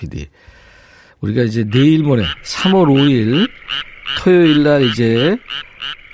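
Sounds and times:
speech: 0:00.0 - 0:06.0
frog croaking: 0:01.6 - 0:06.1.

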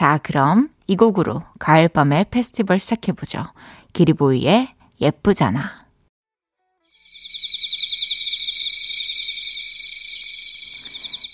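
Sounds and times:
speech: 0:00.0 - 0:05.8
chorus of night grass insects trilling: 0:06.9 - 0:11.3.

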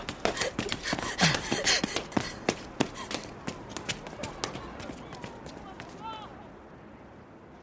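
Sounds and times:
running footsteps of a person running laps of a sports ground: 0:00.0 - 0:06.3
heavy panting breaths: 0:00.1 - 0:03.4.

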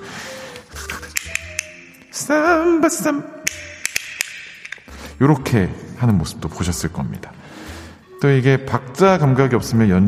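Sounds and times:
shell-shaped wooden castanets clicking: 0:00.5 - 0:02.2, 0:03.4 - 0:04.9
speech: 0:02.2 - 0:03.6, 0:05.2 - 0:07.5, 0:08.2 - 0:10.0.

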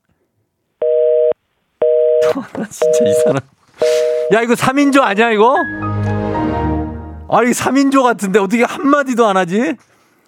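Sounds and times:
telephone line tones as a phone call connects: 0:00.8 - 0:02.2, 0:02.8 - 0:04.4
speech: 0:02.2 - 0:06.2, 0:07.3 - 0:09.9.

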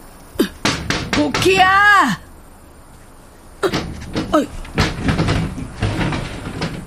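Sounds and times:
door rattling: 0:00.6 - 0:01.9, 0:03.6 - 0:06.8
speech: 0:01.2 - 0:02.2, 0:03.6 - 0:04.6.

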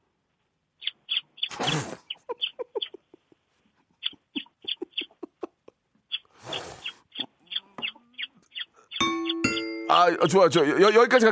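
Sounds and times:
courting bird call of rapid high-pitched chirps: 0:00.7 - 0:03.1, 0:03.9 - 0:05.4, 0:06.0 - 0:11.3
bright bell-like ding: 0:09.0 - 0:10.2
speech: 0:10.0 - 0:11.3.

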